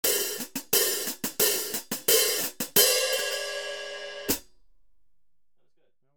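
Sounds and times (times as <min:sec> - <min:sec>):
13in hi-hat cymbals: 0:00.0 - 0:04.5.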